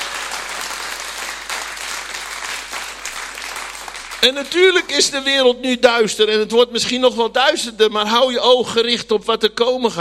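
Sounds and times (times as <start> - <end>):
audience applauding: 0.0 - 4.8
speech: 4.2 - 9.9.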